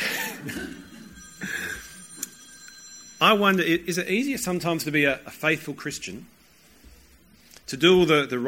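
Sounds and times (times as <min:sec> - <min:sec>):
phone ringing with an electronic trill during a church service: 0:00.0 - 0:04.8
speech: 0:03.2 - 0:06.4, 0:07.7 - 0:08.4.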